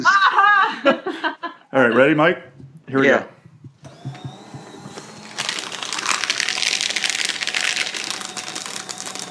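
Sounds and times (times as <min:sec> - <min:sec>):
laughter: 0:00.0 - 0:02.4
speech: 0:01.7 - 0:03.3
quiet taps: 0:02.4 - 0:05.4
paper crinkling and crackling: 0:04.8 - 0:09.2.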